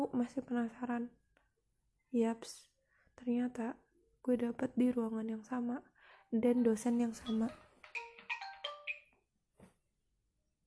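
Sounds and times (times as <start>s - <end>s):
speech: 0.0s - 1.2s, 2.1s - 8.1s
bright electronic phone-style alarm playing a melodic run: 7.3s - 9.1s.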